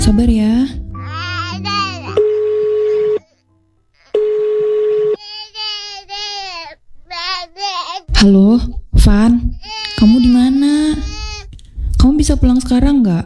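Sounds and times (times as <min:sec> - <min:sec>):
speech: 0:00.1 - 0:00.9, 0:08.2 - 0:09.4, 0:12.3 - 0:13.2
young child wailing: 0:01.0 - 0:03.4, 0:04.0 - 0:08.2, 0:09.6 - 0:11.4
telephone tones as a call is placed at home: 0:04.2 - 0:05.2.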